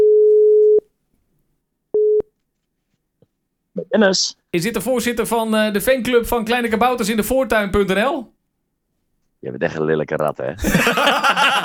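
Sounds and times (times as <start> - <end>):
telephone busy tone after the other side hangs up: 0.0 - 0.8, 2.0 - 2.2
speech: 3.9 - 8.4, 9.4 - 11.6
laughter: 10.6 - 11.6.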